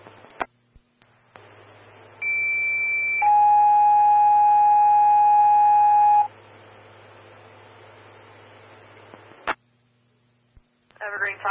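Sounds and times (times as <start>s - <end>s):
radio transmission hiss and clicks: 0.0s - 2.0s, 6.4s - 9.7s
electronic fire dispatch paging tones over a radio channel: 2.2s - 6.3s.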